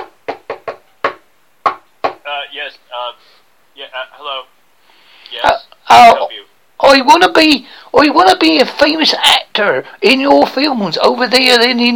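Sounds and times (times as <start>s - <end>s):
sharp knocks on a door: 0.0s - 2.3s
speech: 2.5s - 4.6s, 5.3s - 11.9s.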